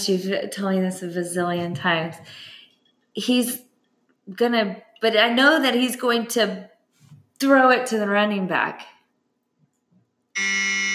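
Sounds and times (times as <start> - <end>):
speech: 0.0 - 2.6, 3.2 - 3.7, 4.3 - 6.7, 7.4 - 8.9, 10.4 - 10.7
game show buzzer with loud harsh steady electronic tone: 10.4 - 10.9.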